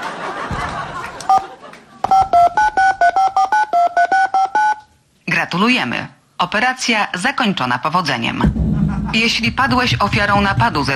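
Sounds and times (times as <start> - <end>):
laughter: 0.0 - 2.1
telephone keypad DTMF tones entering a PIN: 1.3 - 4.9
speech: 5.5 - 10.9.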